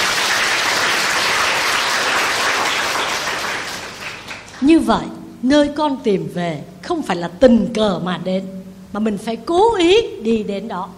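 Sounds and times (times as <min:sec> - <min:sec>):
crowd applauding: 0:00.0 - 0:04.6
speech: 0:04.6 - 0:10.9.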